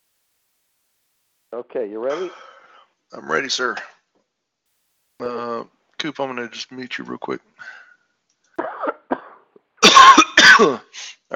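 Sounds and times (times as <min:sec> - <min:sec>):
speech: 0:01.5 - 0:02.5, 0:03.1 - 0:04.0, 0:05.2 - 0:07.8, 0:10.6 - 0:11.3
person coughing: 0:08.6 - 0:10.9.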